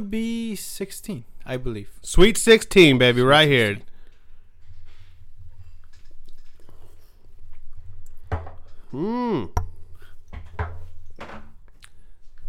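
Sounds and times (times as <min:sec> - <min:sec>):
speech: 0:00.0 - 0:03.9, 0:08.9 - 0:09.6
person swallowing a shot of liquor: 0:08.8 - 0:10.1.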